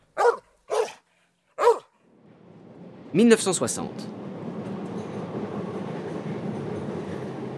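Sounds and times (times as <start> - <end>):
Paris metro train rumbling along: 2.0 - 7.5
speech: 3.1 - 4.3.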